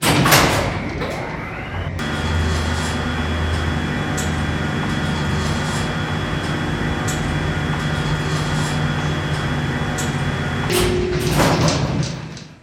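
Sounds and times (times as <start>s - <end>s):
oil rig elevator running: 0.0s - 12.6s.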